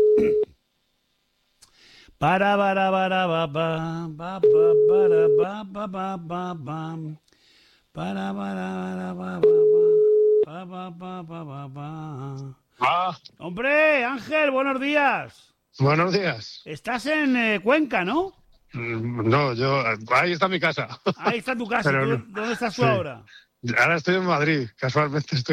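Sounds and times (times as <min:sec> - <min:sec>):
telephone line beeps signalling an incoming call: 0:00.0 - 0:00.5
speech: 0:02.2 - 0:07.3, 0:08.0 - 0:25.5.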